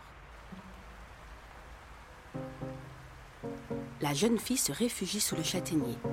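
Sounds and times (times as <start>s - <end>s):
heavy rain falling: 0.0s - 6.1s
sustained musical notes: 2.4s - 4.3s, 5.3s - 6.1s
speech: 3.7s - 6.1s.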